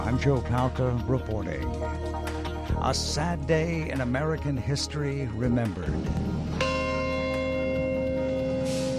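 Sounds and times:
speech: 0.2 - 6.3
deep memorial bell struck at the World Trade Center site: 5.9 - 8.9.

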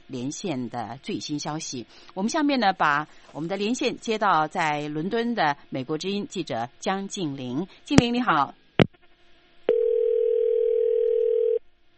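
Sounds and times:
faint hiss: 0.0 - 11.9
speech: 0.1 - 8.6
telephone dial tone: 9.7 - 11.6.

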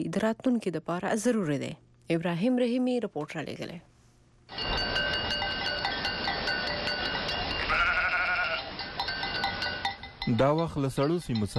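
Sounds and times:
speech: 0.0 - 3.9, 10.3 - 11.5
bell-like clinks: 4.5 - 7.7, 8.7 - 11.5
flock of sheep and goats bleating as migrating nomads drive it: 7.5 - 8.8.

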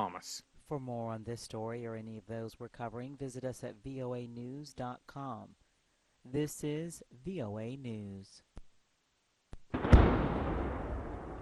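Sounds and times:
speech: 0.1 - 5.6, 6.2 - 8.5
sharp crack: 9.5 - 11.4
explosion in a war zone in the Zaporizhia region of Ukraine: 9.7 - 11.4.

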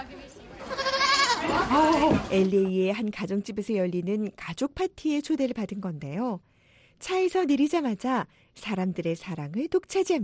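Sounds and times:
dwarf goat kids bleating: 0.6 - 1.7
speech: 1.5 - 10.2.

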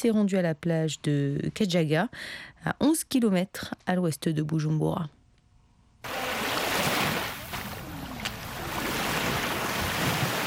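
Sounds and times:
speech: 0.0 - 5.2
lake waves lapping against a shoreline: 6.1 - 10.4.

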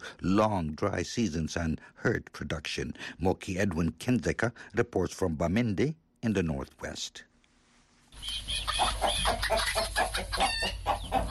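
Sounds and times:
speech: 0.2 - 7.3, 8.2 - 11.3
flock of farm chickens clucking in Santa, Cameroon: 8.2 - 11.3.

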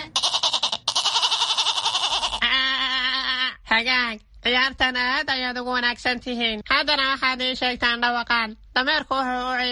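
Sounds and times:
goat bleating: 0.2 - 2.4
speech: 3.8 - 9.6.

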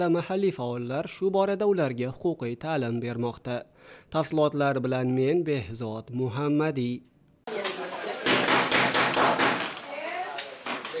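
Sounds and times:
speech: 0.0 - 7.1
knocking on a door at a training session for immigrants: 8.2 - 9.8.

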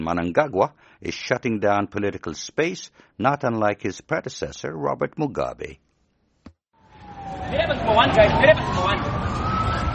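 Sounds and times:
speech: 0.0 - 5.9, 7.5 - 9.8
police siren wailing: 6.8 - 9.9.

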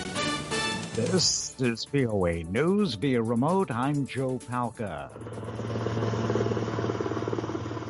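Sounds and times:
speech: 1.0 - 5.7
helicopter flying: 5.1 - 7.8.

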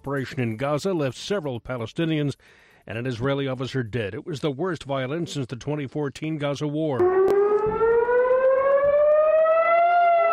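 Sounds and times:
speech: 0.0 - 7.9
rocket warning siren wailing: 7.0 - 10.3.

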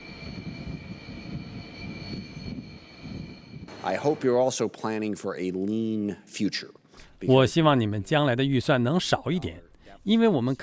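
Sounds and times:
J-15 fighter jet engine roaring during takeoff from an aircraft carrier: 0.0 - 4.7
speech: 3.7 - 10.6.

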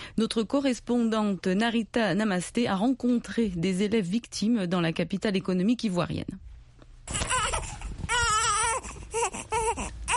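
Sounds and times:
speech: 0.2 - 6.5
two-week-old baby crying loudly in Yopougon, Côte d'Ivoire: 7.1 - 10.1.

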